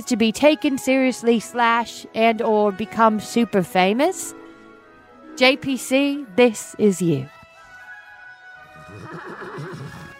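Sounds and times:
speech: 0:00.0 - 0:04.4, 0:05.4 - 0:07.4
horse neighing: 0:08.6 - 0:10.1.

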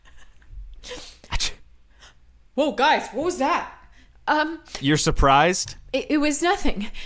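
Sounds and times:
person sneezing: 0:00.8 - 0:01.7
speech: 0:02.6 - 0:07.0.

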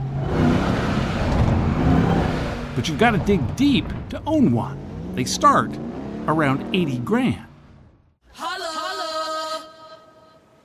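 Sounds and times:
Ram 1500 TRX pickup truck engine revving: 0:00.0 - 0:08.2
speech: 0:02.8 - 0:07.5.

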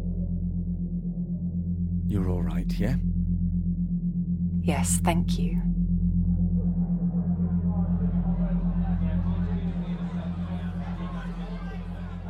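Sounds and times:
steady droning low hum: 0:00.0 - 0:12.2
speech: 0:02.1 - 0:03.1, 0:04.6 - 0:05.8
crowd chatter in a busy pub: 0:08.3 - 0:12.2.

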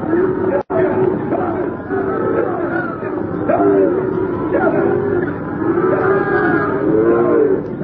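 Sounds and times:
herd of cattle mooing while being herded: 0:00.2 - 0:07.8.

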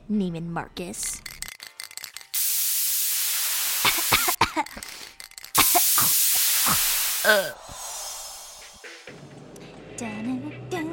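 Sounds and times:
speech: 0:00.1 - 0:01.3, 0:04.6 - 0:05.1, 0:06.0 - 0:07.8, 0:10.0 - 0:10.6
red aerosol spray paint sprayed onto white pumps: 0:02.4 - 0:04.4, 0:05.6 - 0:09.1
vocal sounds: 0:05.6 - 0:09.1.

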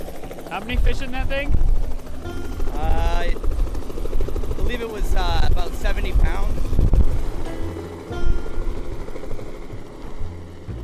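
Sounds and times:
helicopter rotor thumping: 0:00.0 - 0:10.8
speech: 0:00.5 - 0:03.5, 0:04.7 - 0:06.8.

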